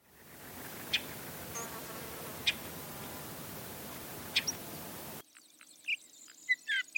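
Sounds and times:
Sage Thrasher call: 0.2 - 5.2.

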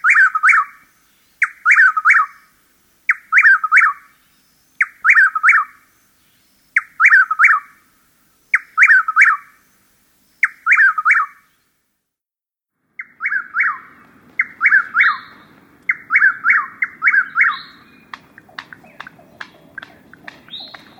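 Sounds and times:
Chuck-will's-widow calling a three-part phrase: 0.0 - 11.8, 13.0 - 20.9
sharp clicks: 18.1 - 20.9.

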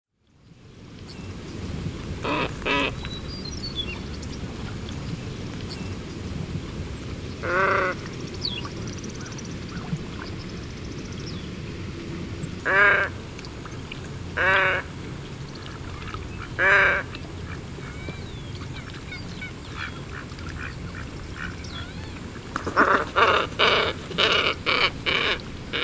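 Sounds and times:
low rumbling background noise: 0.2 - 25.8
glossy ibis hoarse croaking calls and rough grunts: 2.2 - 4.2, 7.4 - 11.4, 12.4 - 13.2, 14.4 - 15.0, 16.3 - 25.8.

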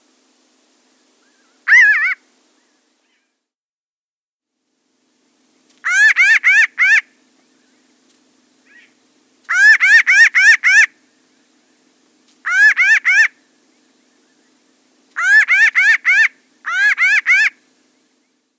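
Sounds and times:
pinyon jay calling in rapid nasal bursts: 1.7 - 2.2, 5.8 - 7.1, 9.5 - 11.0, 12.4 - 13.4, 15.2 - 17.6.

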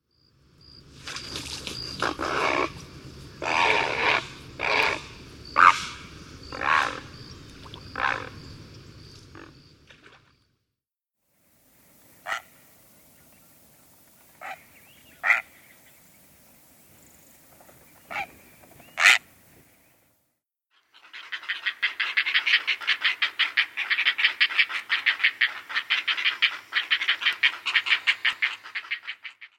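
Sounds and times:
Great Blue Heron calling: 3.4 - 8.6, 12.2 - 12.6, 14.3 - 16.0, 18.0 - 19.4, 20.9 - 29.5.

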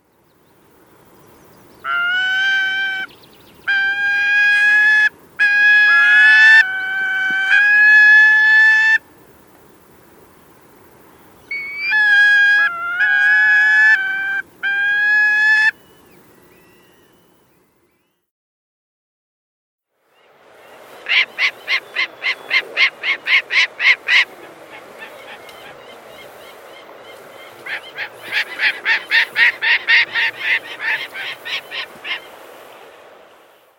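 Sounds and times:
gyrfalcon call: 1.8 - 9.0, 11.5 - 16.0, 21.1 - 26.8, 27.4 - 32.3.

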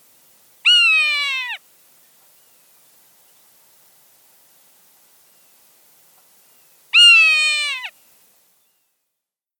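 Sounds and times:
Swainson's hawk uttering a harsh sustained scream: 7.0 - 7.9.

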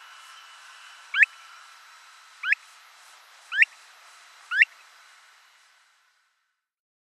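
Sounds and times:
faint steady background hiss: 0.0 - 6.7
Mountain plover rising whistled calls: 1.1 - 1.4, 2.4 - 2.6, 3.5 - 3.8, 4.5 - 4.8.

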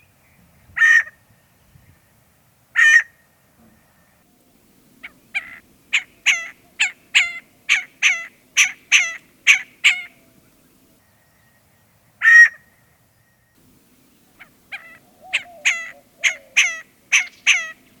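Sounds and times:
scaled quail calling: 0.8 - 1.2, 2.8 - 4.0, 5.0 - 11.0, 12.2 - 12.8, 13.6 - 17.9.

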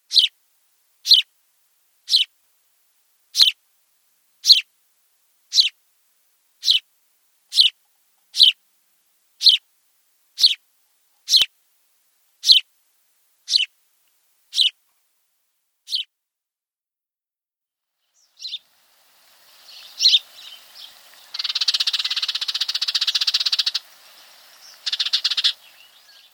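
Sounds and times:
House Sparrow: 0.0 - 0.4, 1.0 - 1.3, 2.1 - 2.3, 3.3 - 3.6, 4.4 - 4.7, 5.5 - 5.8, 6.6 - 6.9, 7.5 - 8.6, 9.4 - 9.7, 10.4 - 10.6, 11.2 - 11.5, 12.4 - 12.7, 13.5 - 13.8, 14.5 - 14.8, 15.9 - 16.1, 18.0 - 26.3.

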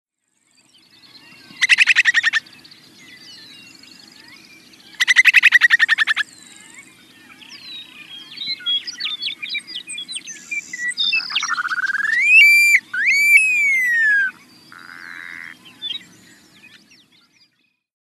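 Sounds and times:
upland sandpiper calling: 1.2 - 2.5, 4.2 - 6.9, 7.5 - 16.8.

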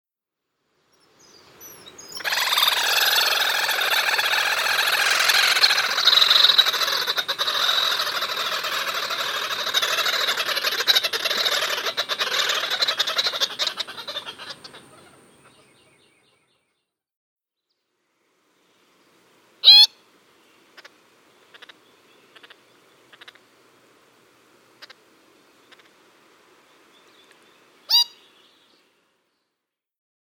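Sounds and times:
Least Grebe calling: 1.7 - 16.0, 19.6 - 20.0, 20.8 - 23.5, 24.7 - 26.1, 27.1 - 28.4.

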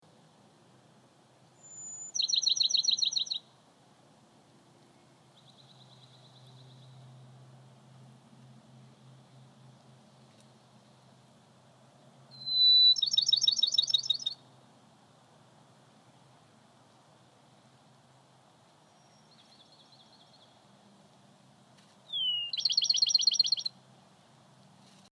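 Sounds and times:
Bachman's sparrow Peucaea aestivalis singing: 1.6 - 3.5, 5.4 - 7.0, 12.3 - 14.4, 18.9 - 20.6, 22.1 - 23.7.

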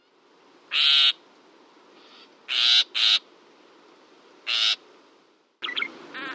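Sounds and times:
Northern shrike giving harsh buzzy rasping calls: 0.7 - 1.2, 2.0 - 3.3, 4.4 - 4.8, 5.6 - 6.3.

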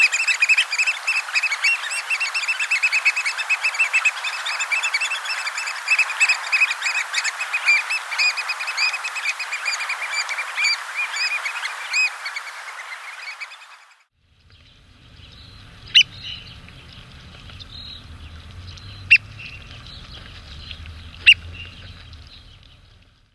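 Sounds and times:
American oystercatcher shrill piping notes: 0.0 - 13.7, 14.4 - 23.3
low background rumble: 14.2 - 23.3.

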